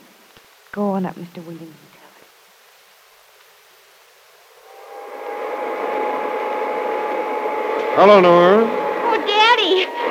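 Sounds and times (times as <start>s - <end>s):
speech: 0.7s - 2.0s, 8.0s - 8.8s
vacuum cleaner motor whining: 4.4s - 10.0s.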